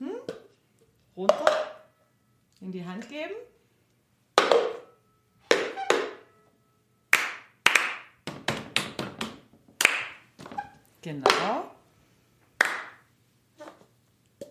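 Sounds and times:
speech: 1.2s - 1.5s, 2.6s - 3.5s, 11.0s - 11.8s
hand claps in a clapping game: 7.1s - 10.2s, 12.6s - 13.0s.

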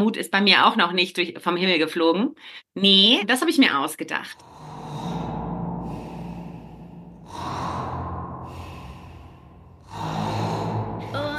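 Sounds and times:
speech: 0.0s - 4.5s
loud heavy snoring from a sleeping police officer: 4.4s - 11.3s.

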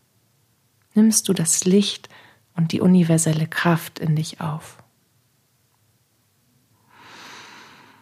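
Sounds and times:
speech: 1.0s - 4.8s
deep breath during a guided meditation: 6.8s - 8.0s.

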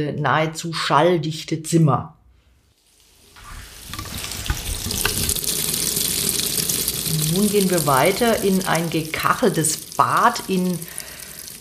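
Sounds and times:
speech: 0.0s - 2.2s, 7.4s - 11.0s
tap water gushing into a washbasin: 2.9s - 11.5s.

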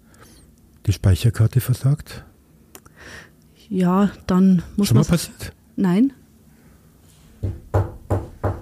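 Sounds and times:
speech: 0.9s - 2.3s, 3.1s - 6.2s, 7.4s - 7.9s
dull knocks on wood: 7.4s - 8.5s.

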